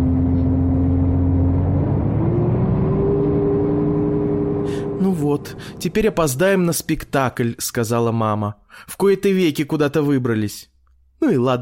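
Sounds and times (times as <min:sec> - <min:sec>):
bus engine pulling away from stop: 0:00.0 - 0:07.2
speech: 0:05.4 - 0:11.6.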